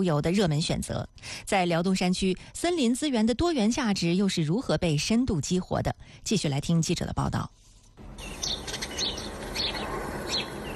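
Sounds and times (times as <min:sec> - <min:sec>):
speech: 0:00.0 - 0:07.6
birds singing in a forest valley: 0:08.1 - 0:10.7.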